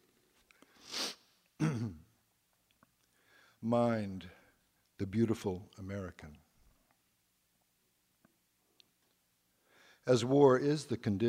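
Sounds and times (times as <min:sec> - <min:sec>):
person sniffling: 0:00.7 - 0:01.8
speech: 0:03.6 - 0:04.4, 0:05.0 - 0:06.4, 0:10.1 - 0:11.2.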